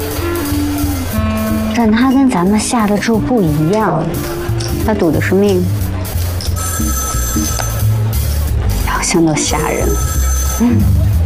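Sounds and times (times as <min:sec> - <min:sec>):
low rumbling background: 0:00.0 - 0:11.2
speech: 0:01.8 - 0:05.8, 0:09.0 - 0:11.0
telephone bell ringing in a high-pitched trill: 0:06.5 - 0:08.0, 0:09.4 - 0:11.1.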